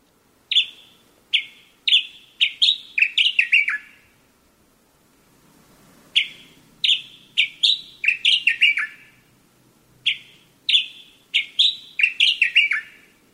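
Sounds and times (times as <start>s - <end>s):
Sakhalin grasshopper warbler singing at night in a residential neighborhood: 0.5s - 4.2s, 6.2s - 9.3s, 10.0s - 13.2s.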